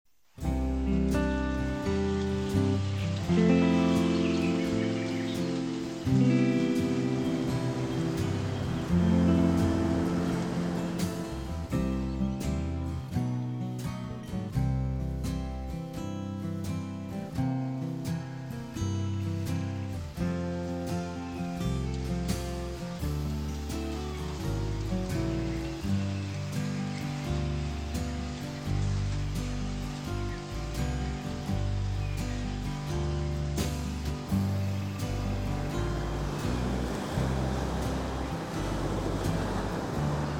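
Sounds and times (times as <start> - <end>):
waves: 0.4 - 40.3
birds: 1.8 - 12.4, 20.6 - 40.3.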